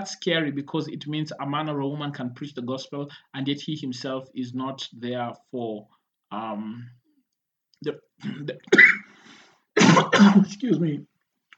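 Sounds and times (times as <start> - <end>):
speech: 0.0 - 7.0, 7.8 - 8.8, 9.8 - 11.1
man clearing his throat during a church sermon: 8.2 - 9.1, 9.8 - 10.6.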